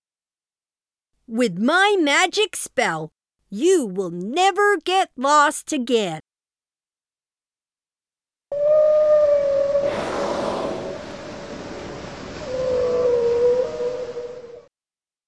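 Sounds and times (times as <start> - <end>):
speech: 1.3 - 6.3
mother whale calling: 8.5 - 14.7
rushing swell of water: 9.7 - 14.6.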